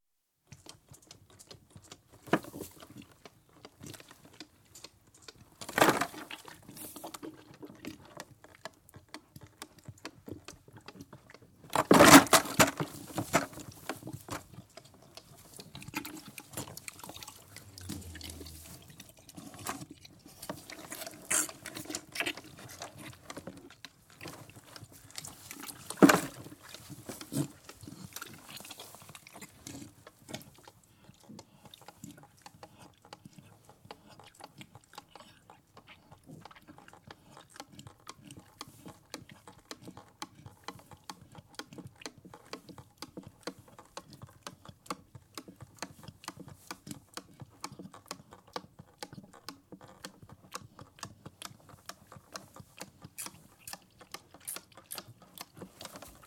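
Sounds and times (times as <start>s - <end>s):
young calf sucking through teat out of bucket: 0.5s - 11.8s, 12.5s - 56.2s
young calves feeding from buckets in sheds: 0.5s - 56.2s
young calf mooing: 17.6s - 18.9s.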